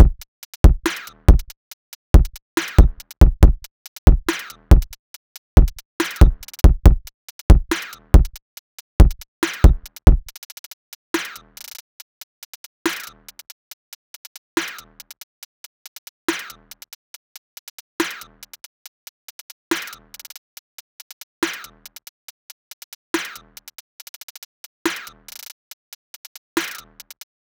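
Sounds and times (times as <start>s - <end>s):
drum loop full beat: 0.0s - 1.6s, 2.2s - 5.0s, 5.6s - 8.4s, 9.0s - 10.3s.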